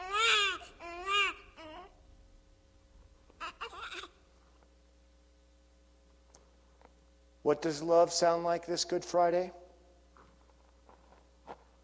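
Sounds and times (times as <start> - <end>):
newborn baby crying in wavering wails and sobs: 0.0 - 2.0, 3.3 - 4.2
speech: 7.5 - 9.6.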